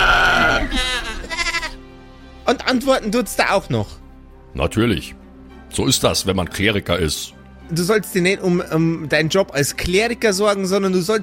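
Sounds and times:
goat bleating in a drawn-out quavering cry: 0.3s - 1.8s
speech: 2.5s - 11.2s.

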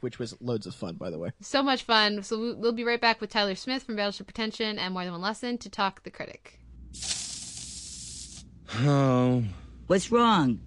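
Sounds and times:
speech: 0.0s - 7.2s, 8.7s - 10.6s
aerosol can of spray-on hair hissing: 7.0s - 8.5s.

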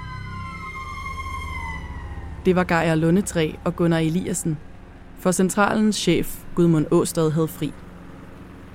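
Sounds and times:
ambulance siren wailing: 0.0s - 4.8s
low rumbling engine: 0.0s - 8.7s
speech: 2.4s - 7.8s.

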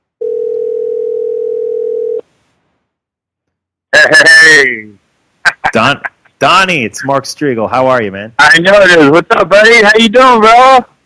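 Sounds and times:
electronic telephone line ring tone on the caller's end: 0.2s - 2.2s
speech: 4.0s - 5.0s, 5.7s - 10.9s.

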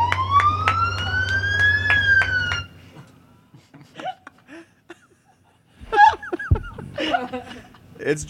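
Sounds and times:
police car siren wailing: 0.0s - 3.5s
low engine drone: 0.0s - 3.8s
people chuckling and laughing: 3.5s - 8.0s.

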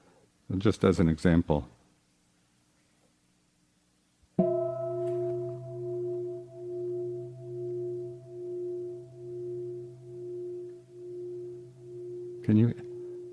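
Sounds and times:
speech: 0.5s - 1.8s
single bell struck and ringing: 4.4s - 13.3s.

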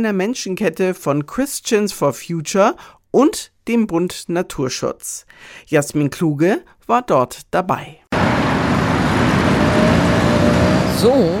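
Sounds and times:
speech: 0.0s - 8.0s, 11.0s - 11.3s
car and bus engines at a major traffic junction in Nuremberg Germany: 8.1s - 11.3s.

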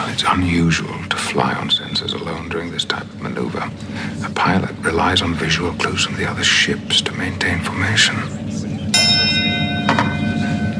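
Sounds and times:
low steady hum: 0.0s - 10.7s
speech: 0.2s - 8.6s
hand bell ringing: 8.9s - 10.7s.

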